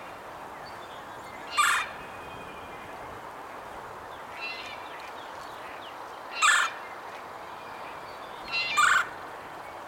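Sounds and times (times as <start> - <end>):
red-bellied woodpecker Melanerpes carolinus giving harsh rolling calls: 1.3 - 2.1, 6.4 - 6.7, 8.5 - 9.2.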